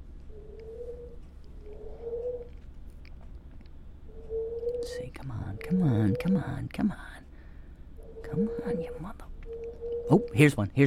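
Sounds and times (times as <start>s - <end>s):
bird cooing: 0.3s - 2.6s, 4.1s - 6.6s, 8.0s - 10.4s
speech: 5.0s - 7.2s, 8.3s - 9.3s, 10.1s - 10.8s.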